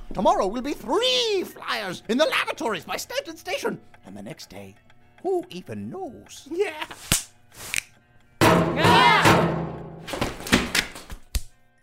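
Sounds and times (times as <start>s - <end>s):
speech: 0.1s - 7.2s
knocking on a door: 8.4s - 9.9s.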